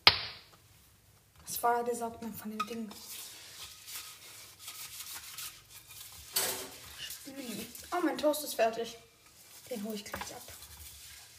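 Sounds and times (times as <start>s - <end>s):
speech: 1.5s - 3.3s, 8.0s - 9.1s, 9.7s - 10.6s
utensil scraping a tiny frying pan clean: 2.6s - 11.3s.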